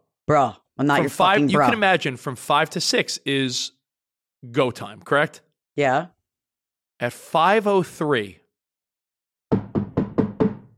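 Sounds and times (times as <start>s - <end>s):
speech: 0.3s - 3.8s, 4.4s - 6.2s, 7.0s - 8.4s
knocking on a door: 9.5s - 10.7s.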